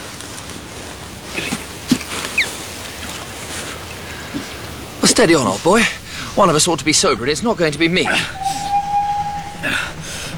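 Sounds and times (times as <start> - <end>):
speech: 5.2 - 8.5
approaching train whistle tone: 5.2 - 10.3
low rumbling of an approaching train: 5.7 - 10.3.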